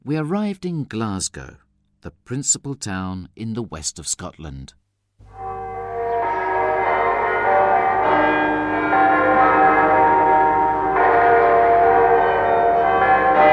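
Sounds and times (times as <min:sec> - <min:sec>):
speech: 0:00.0 - 0:04.8
several city church bells pealing together: 0:05.3 - 0:13.5.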